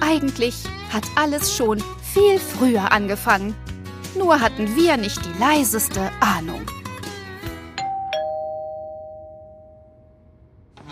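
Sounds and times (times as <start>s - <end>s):
speech: 0.1s - 6.8s
two-tone doorbell chiming: 7.8s - 10.2s.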